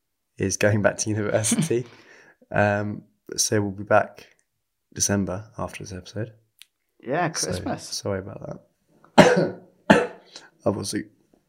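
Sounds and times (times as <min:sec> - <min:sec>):
speech: 0:00.4 - 0:04.3, 0:04.9 - 0:06.4, 0:07.0 - 0:10.0, 0:10.6 - 0:11.2
sharp harsh coughs: 0:09.2 - 0:10.4.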